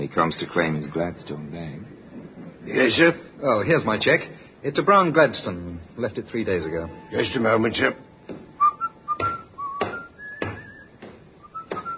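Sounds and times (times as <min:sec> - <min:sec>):
speech: 0:00.0 - 0:02.0, 0:02.6 - 0:08.0
dull thumps: 0:08.2 - 0:11.9
man whistling a wandering tune at a baggage check counter: 0:08.6 - 0:11.9.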